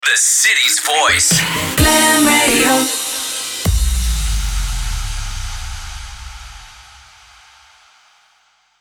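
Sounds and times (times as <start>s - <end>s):
sung radio jingle sting in C minor: 0.0s - 6.6s.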